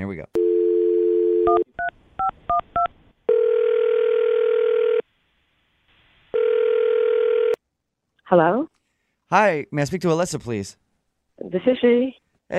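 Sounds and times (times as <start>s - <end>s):
speech: 0.0s - 0.4s, 8.3s - 10.8s, 11.5s - 12.5s
telephone dial tone: 0.4s - 1.6s, 3.3s - 5.0s, 6.4s - 7.6s.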